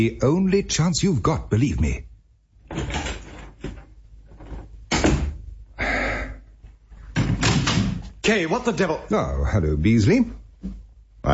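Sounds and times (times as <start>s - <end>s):
speech: 0.0s - 2.1s, 8.2s - 11.3s
wooden door rattling: 2.6s - 5.4s, 7.1s - 8.1s
wooden door pushed shut: 4.9s - 5.4s, 7.2s - 8.0s.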